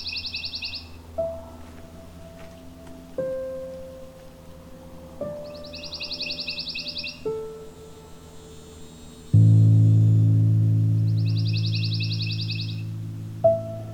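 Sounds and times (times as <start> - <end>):
songbird singing a soft musical trill in a pine woodlot: 0.0 - 1.0, 5.3 - 10.2, 11.0 - 12.9
sustained low tones: 0.0 - 13.9.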